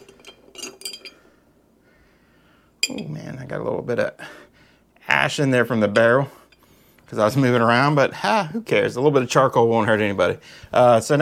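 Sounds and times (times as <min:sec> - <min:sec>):
stirrer clinking against a glass while a cocktail is stirred: 0:00.0 - 0:01.2
speech: 0:02.9 - 0:04.4, 0:05.2 - 0:06.4, 0:07.1 - 0:11.2.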